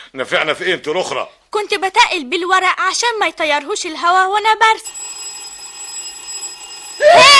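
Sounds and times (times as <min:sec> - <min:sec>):
speech: 0:00.1 - 0:05.2
telephone ringing: 0:04.8 - 0:07.3.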